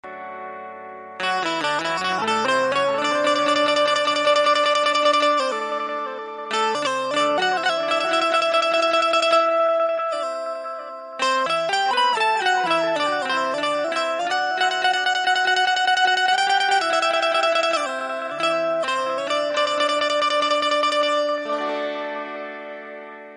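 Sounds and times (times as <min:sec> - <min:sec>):
banjo music ringtone: 0:01.2 - 0:23.3.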